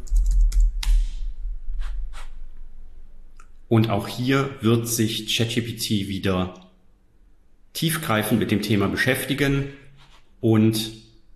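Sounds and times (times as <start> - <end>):
computer keyboard typing a question into an AI chatbot: 0.0 - 1.1
speech: 3.7 - 6.6, 7.8 - 9.8, 10.4 - 11.0.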